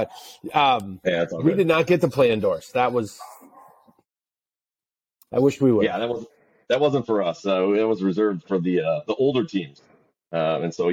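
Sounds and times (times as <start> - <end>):
speech: 0.0 - 3.4, 5.3 - 10.9
dog barking: 3.2 - 4.0.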